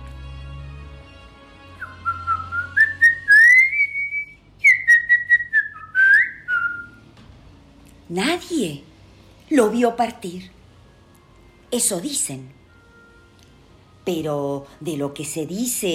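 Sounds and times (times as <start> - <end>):
soft whistling of a chamame tune: 1.8 - 7.0
speech: 8.1 - 8.9, 9.5 - 10.6, 11.7 - 12.6, 14.1 - 15.9.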